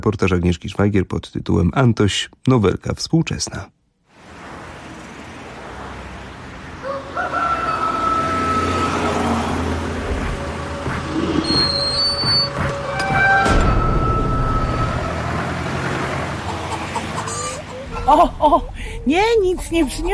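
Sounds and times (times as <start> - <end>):
speech: 0.0 - 3.8, 18.1 - 20.1
rooster crowing in a henhouse: 6.8 - 10.8, 12.7 - 15.6, 16.3 - 18.0
hens clucking and cackling in a henhouse: 6.8 - 11.5, 16.0 - 18.3.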